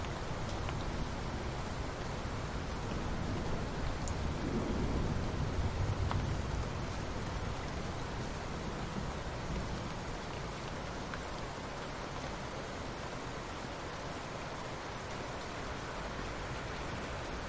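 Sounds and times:
steady rain falling at night: 0:00.0 - 0:17.4.

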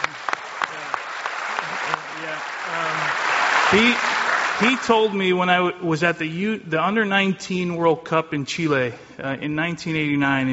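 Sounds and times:
audience applauding: 0:00.0 - 0:05.4
speech: 0:02.4 - 0:10.5.

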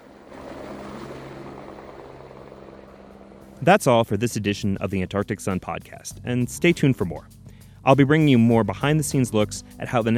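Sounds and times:
helicopter engine and rotor drone taking off and flying: 0:00.0 - 0:03.7
speech: 0:03.6 - 0:10.1.

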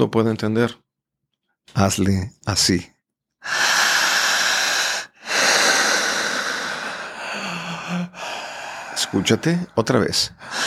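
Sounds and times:
speech: 0:00.0 - 0:00.8, 0:01.7 - 0:03.8, 0:09.1 - 0:10.6
forceful rhythmic breathing exercise: 0:03.4 - 0:10.6.

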